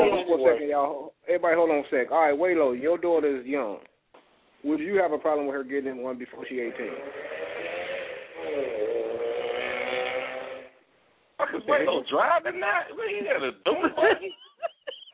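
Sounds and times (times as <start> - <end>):
speech: 0.4 - 3.9, 4.6 - 7.3, 8.4 - 8.8, 11.4 - 15.1
motorcycle engine idling and revving: 6.6 - 10.8
people chuckling: 13.6 - 15.1.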